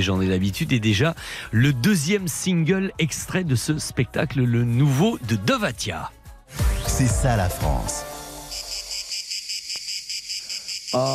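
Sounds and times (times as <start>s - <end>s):
speech: 0.0s - 6.2s, 7.0s - 8.1s, 10.9s - 11.1s
cicadas singing: 8.4s - 11.1s.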